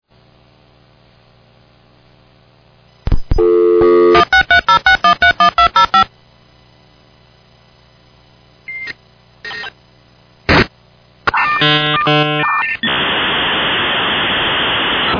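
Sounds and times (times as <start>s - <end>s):
dial-up modem connecting: 3.1s - 6.1s, 11.3s - 15.1s.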